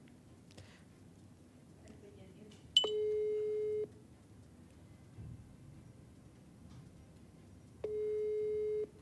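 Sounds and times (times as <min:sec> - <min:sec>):
ringback tone of an outgoing telephone call: 0:02.8 - 0:03.9, 0:07.8 - 0:09.0.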